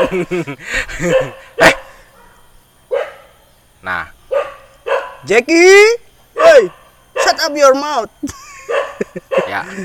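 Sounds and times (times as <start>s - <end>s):
speech: 0.0s - 1.8s, 5.2s - 8.8s, 9.4s - 9.8s
person laughing: 0.0s - 1.9s, 8.2s - 9.8s
wild dog barking in a forest: 1.0s - 3.4s, 4.3s - 5.3s, 6.4s - 7.5s, 8.7s - 9.6s.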